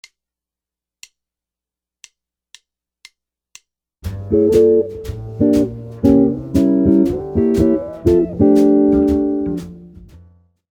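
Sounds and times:
jazz guitar chord licks: 4.0s - 10.2s.

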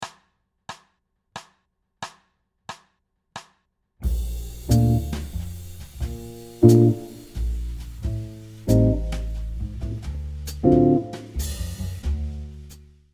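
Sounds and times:
jazz chords: 4.0s - 12.9s.

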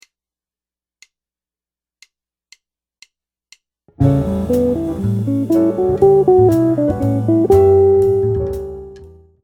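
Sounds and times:
jazz guitar lick: 4.0s - 9.2s.

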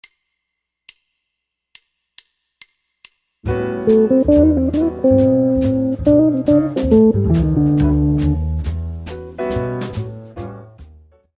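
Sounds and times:
dominant guitar lick: 3.8s - 8.7s.

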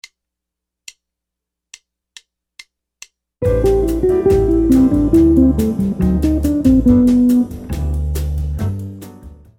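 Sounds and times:
Brazilian jazz guitar licks: 3.4s - 8.9s.

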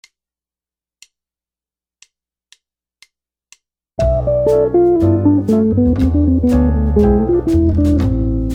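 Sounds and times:
guitar lick: 4.0s - 8.4s.

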